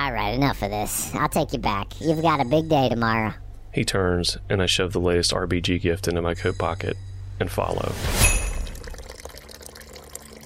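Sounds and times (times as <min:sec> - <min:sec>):
speech: 0:00.0 - 0:08.3
hot cocoa poured into a cup: 0:08.2 - 0:10.4.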